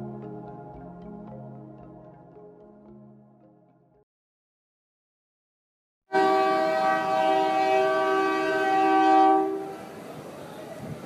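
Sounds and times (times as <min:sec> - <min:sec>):
freight train horn blaring beside a migrant shelter in Ixtepec Mexico: 0:06.1 - 0:09.8.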